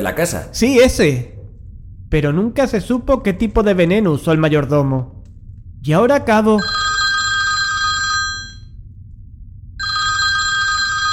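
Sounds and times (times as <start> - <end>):
speech: 0.0 - 1.4, 2.1 - 5.2, 5.8 - 6.8
electric telephone bell ringing: 6.6 - 8.6, 9.8 - 11.1.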